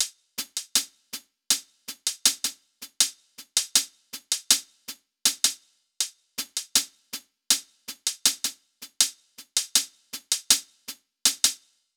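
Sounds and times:
hi-hat loop: 0:00.0 - 0:05.6, 0:06.4 - 0:11.6.

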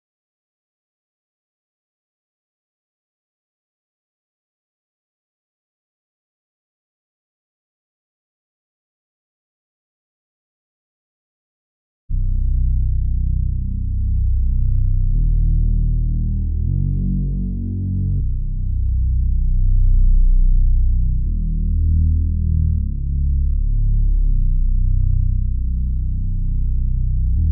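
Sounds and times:
R and B bass melody loop: 0:12.2 - 0:27.5.

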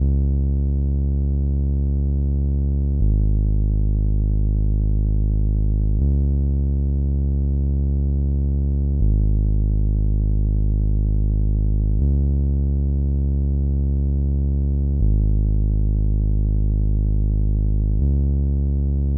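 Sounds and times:
bass melody loop in F minor: 0:00.0 - 0:19.1.

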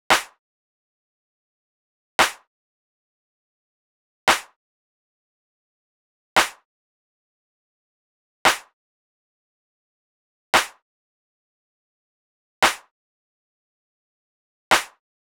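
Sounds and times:
drum loop at 115 BPM with clap: 0:00.1 - 0:00.4, 0:02.2 - 0:02.4, 0:04.3 - 0:04.5, 0:06.4 - 0:06.6, 0:08.5 - 0:08.7, 0:10.6 - 0:10.8, 0:12.6 - 0:12.9, 0:14.7 - 0:15.0.

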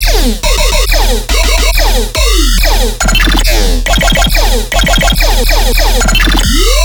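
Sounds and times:
riddim bass loop: 0:00.0 - 0:06.8.

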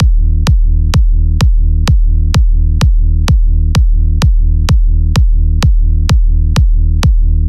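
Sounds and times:
EDM kick drum loop with percussion: 0:00.0 - 0:07.4.

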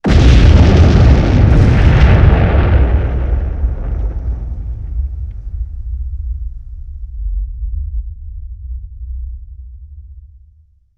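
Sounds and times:
large explosion with low rumble: 0:00.0 - 0:10.0
low rumble: 0:00.1 - 0:10.9.

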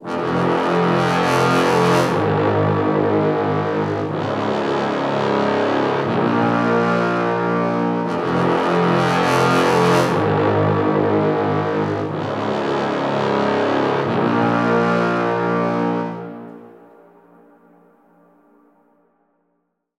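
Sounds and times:
tubas playing in F minor at 120 BPM: 0:00.0 - 0:17.6.

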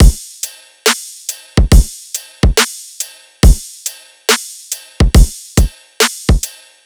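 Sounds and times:
riddim drum loop at 140 bpm: 0:00.0 - 0:06.5.

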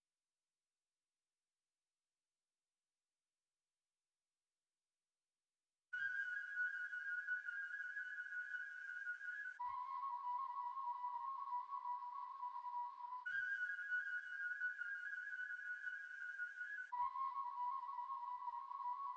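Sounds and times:
flute melody in D sharp minor: 0:06.0 - 0:19.1.

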